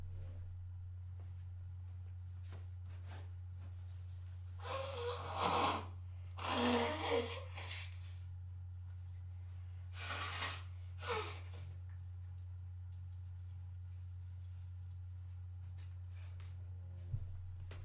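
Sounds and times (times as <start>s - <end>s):
low electrical hum: 0.0s - 17.8s
person blowing nose into a tissue: 4.6s - 8.0s, 9.9s - 11.6s.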